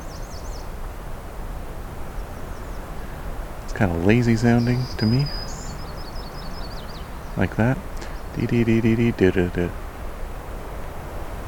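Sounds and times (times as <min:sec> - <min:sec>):
steady hiss: 0:00.0 - 0:11.4
myrtle warbler trill song: 0:02.4 - 0:09.4
speech: 0:03.7 - 0:05.4, 0:07.4 - 0:09.8.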